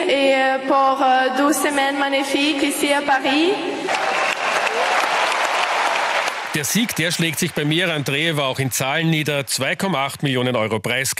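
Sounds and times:
speech: 0.4 - 4.1, 6.6 - 11.1
large tennis stadium crowd applauding on Center Court in Paris: 3.8 - 10.7.

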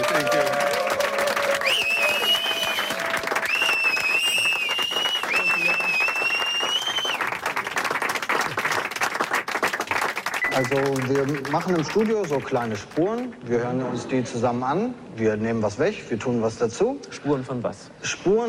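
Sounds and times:
crowd applauding with dense clapping: 0.0 - 13.5
shrill whistles from a crowd: 1.6 - 7.3
speech: 10.6 - 18.4.

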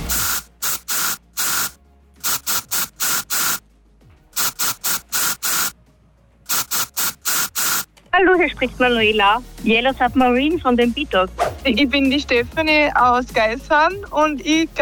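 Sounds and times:
deodorant spray can spraying in short bursts: 0.0 - 3.6, 4.4 - 5.8, 6.5 - 7.9
speech: 8.2 - 14.8.

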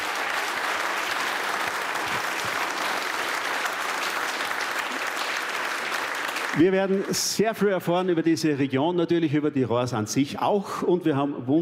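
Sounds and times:
crowd applauding: 0.0 - 7.9
speech: 6.6 - 11.6.

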